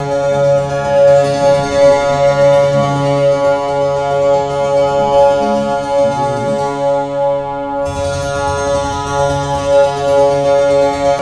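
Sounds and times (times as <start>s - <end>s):
monochord: 0.0s - 11.2s.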